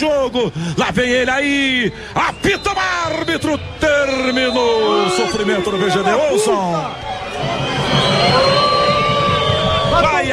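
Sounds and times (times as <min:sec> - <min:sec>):
speech: 0:00.0 - 0:08.7
large stadium crowd booing the home team after a lost football match: 0:02.3 - 0:10.3
people shouting in a stadium crowd: 0:04.6 - 0:10.3.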